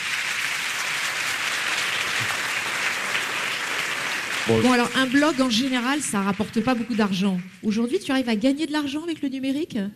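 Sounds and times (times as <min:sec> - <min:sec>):
audience applause: 0:00.0 - 0:07.7
speech: 0:04.5 - 0:09.9.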